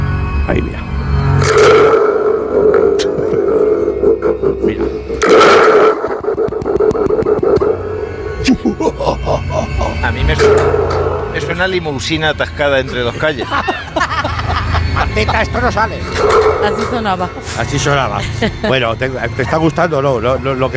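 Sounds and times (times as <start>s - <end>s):
horror tube sound effect device droning with a groaning roar: 0.0s - 20.7s
speech: 0.5s - 1.4s, 11.6s - 13.8s, 15.2s - 20.7s
laughter: 3.0s - 5.0s, 8.4s - 10.5s, 12.6s - 15.8s, 17.8s - 19.8s.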